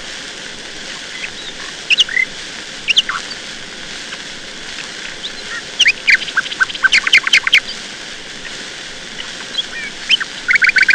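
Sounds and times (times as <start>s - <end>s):
nightingale song: 1.0s - 2.3s, 2.9s - 3.4s, 5.0s - 7.8s, 8.4s - 10.9s.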